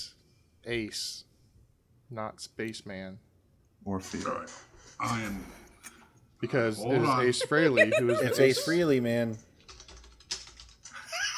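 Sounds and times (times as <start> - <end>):
speech: 0.7 - 1.3, 2.1 - 5.6, 6.4 - 9.5
laughter: 6.8 - 9.2, 11.0 - 11.3
rapid furious typing on small keys: 9.3 - 11.1.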